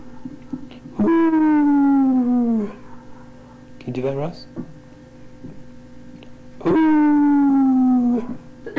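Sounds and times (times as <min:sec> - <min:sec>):
person imitating a howl: 0:01.0 - 0:02.8, 0:06.6 - 0:08.4
speech: 0:04.0 - 0:04.7.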